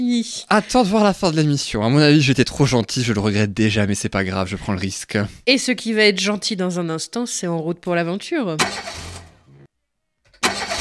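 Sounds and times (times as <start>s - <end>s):
speech: 0.0s - 9.2s
car engine cranking and failing to start with choke not engaged: 8.6s - 9.7s, 10.3s - 10.8s.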